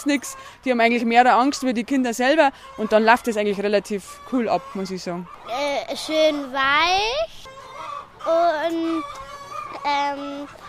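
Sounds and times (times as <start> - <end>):
speech: 0.0 - 7.4, 8.2 - 10.6
hens on an egg-laying farm squawking while one is held and stroked: 2.2 - 10.6.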